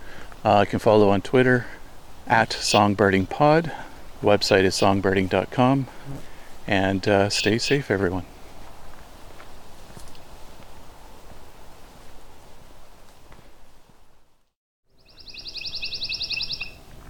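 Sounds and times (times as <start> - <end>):
steady outdoor rustling: 0.0 - 17.0
speech: 0.4 - 8.3
crunching footsteps: 8.1 - 14.3
pine warbler singing a rapid trill: 14.9 - 16.8.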